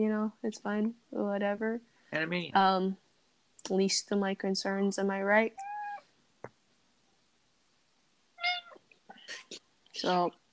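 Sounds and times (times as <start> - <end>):
speech: 0.0 - 3.0, 3.6 - 5.7, 9.5 - 10.4
cat meowing loudly: 5.6 - 6.0, 8.4 - 8.8.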